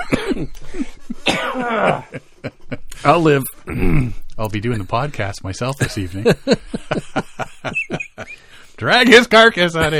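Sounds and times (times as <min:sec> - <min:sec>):
person coughing after choking on inhaled beer foam: 0:00.0 - 0:00.5, 0:01.2 - 0:02.1
speech: 0:00.1 - 0:02.3, 0:03.0 - 0:06.8, 0:08.8 - 0:09.9
laughter: 0:04.5 - 0:08.5, 0:09.8 - 0:09.9.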